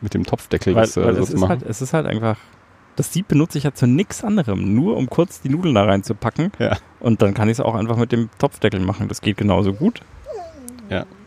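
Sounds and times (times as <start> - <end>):
speech: 0.0 - 11.2
dog whining: 9.6 - 11.2.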